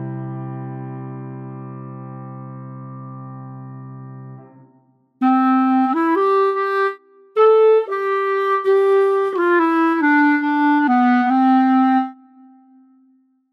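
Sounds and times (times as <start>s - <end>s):
clarinet in C major: 5.2s - 13.1s.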